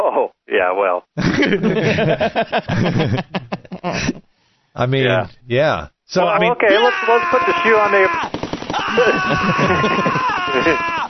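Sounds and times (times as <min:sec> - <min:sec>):
speech: 0:00.7 - 0:04.2, 0:04.8 - 0:10.9
laughter: 0:01.2 - 0:04.2, 0:08.8 - 0:11.0
person imitating a high-pitched drawn-out scream: 0:06.7 - 0:11.0.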